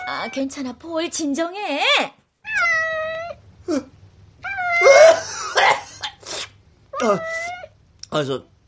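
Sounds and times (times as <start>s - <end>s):
faint low hum: 0.0s - 8.6s
speech: 0.2s - 2.2s, 3.7s - 3.9s, 7.0s - 7.5s, 8.1s - 8.5s
cat meowing loudly and insistently: 2.4s - 3.4s, 4.4s - 5.1s, 6.9s - 7.8s.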